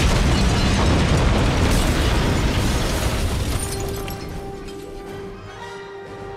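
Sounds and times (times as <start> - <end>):
bomb box detonating in a video game battle: 0.0 - 3.8.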